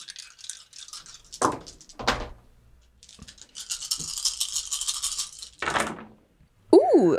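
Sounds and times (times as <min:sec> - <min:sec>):
dice clattering and rattling: 0:00.0 - 0:02.0, 0:03.0 - 0:06.0.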